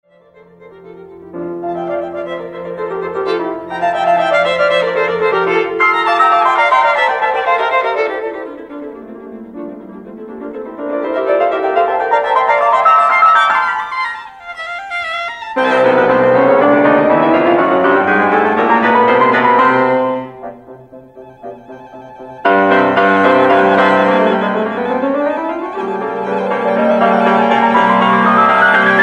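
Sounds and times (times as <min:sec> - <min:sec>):
piano in a double concerto: 0:00.0 - 0:29.0
violin in a double concerto: 0:00.0 - 0:29.0
orchestra in a double concerto: 0:00.2 - 0:29.0.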